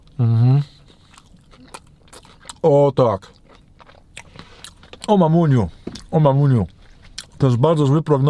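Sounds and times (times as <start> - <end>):
person biting and chewing delivered food with a light mint taste: 0.0 - 7.5
speech: 0.2 - 0.7, 2.6 - 3.4, 5.1 - 6.8, 7.4 - 8.2
person murmuring: 0.2 - 0.8.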